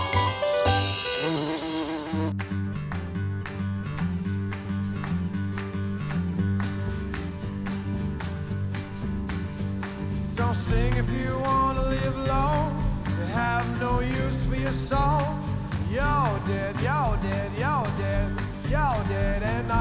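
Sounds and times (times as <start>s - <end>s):
sharp rhythmic hits: 0.0s - 19.7s
insect-like buzzing drone: 0.8s - 2.4s
speech: 13.6s - 19.7s.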